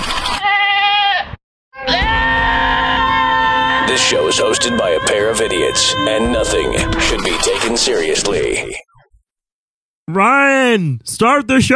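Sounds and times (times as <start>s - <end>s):
goat bleating: 0.4s - 7.8s
speech: 4.0s - 9.0s, 10.1s - 11.7s.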